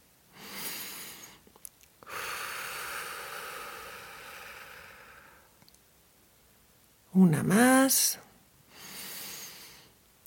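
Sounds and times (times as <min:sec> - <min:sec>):
single deep breath into a microphone: 0:00.3 - 0:01.4, 0:02.0 - 0:05.6, 0:08.7 - 0:10.0
speech: 0:07.2 - 0:08.3.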